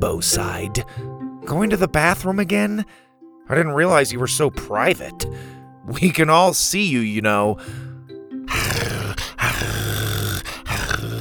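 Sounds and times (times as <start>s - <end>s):
speech: 0.0s - 7.9s
dog growling playfully: 8.5s - 11.1s.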